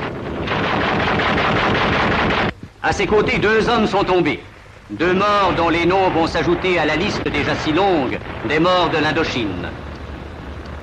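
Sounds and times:
gunfire from Vietnamese forces hitting a patrol: 0.0 - 2.5, 5.2 - 10.8
speech: 2.8 - 9.8.

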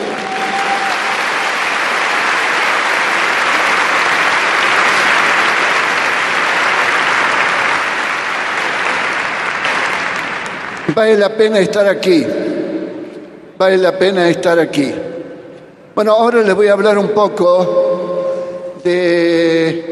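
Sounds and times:
audience applause at a conference rally of married couples and families: 0.0 - 11.0
speech: 10.9 - 12.4, 13.6 - 15.1, 16.0 - 17.8, 18.8 - 19.9.

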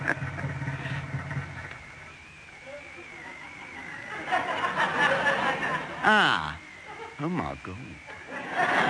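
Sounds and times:
laughter: 0.0 - 1.0, 3.0 - 8.8
car engine spluttering and cutting out: 0.0 - 1.8
louder noise: 0.0 - 8.8
speech: 7.2 - 8.8.

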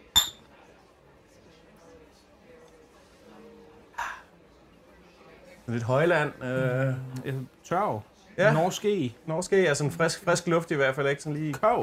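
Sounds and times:
glasses clinking in a toast: 0.0 - 0.5
speech: 5.7 - 11.8.

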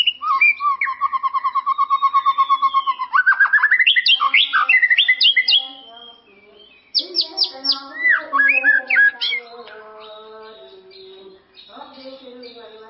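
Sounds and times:
white-rumped shama singing: 0.2 - 12.8.

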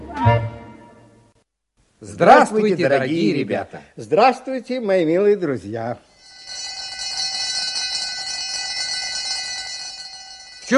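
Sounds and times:
speech: 2.0 - 6.6
electric school bell ringing: 6.1 - 10.7.

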